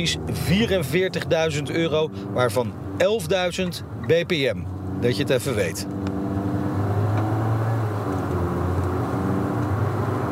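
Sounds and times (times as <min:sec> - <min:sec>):
speech: 0:00.0 - 0:06.0
CVT hybrid car engine humming while accelerating, heard from inside: 0:00.0 - 0:10.2
road rumble: 0:00.0 - 0:10.2.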